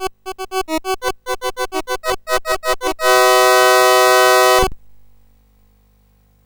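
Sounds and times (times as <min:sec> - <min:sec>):
SID 8580R5 sound chip synthesizer: 0:00.0 - 0:04.7.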